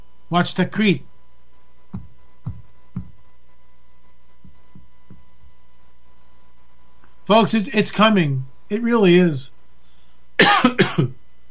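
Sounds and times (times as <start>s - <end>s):
speech: 0.3s - 1.1s, 7.3s - 9.6s, 10.4s - 11.2s
harsh coughs: 10.4s - 11.2s.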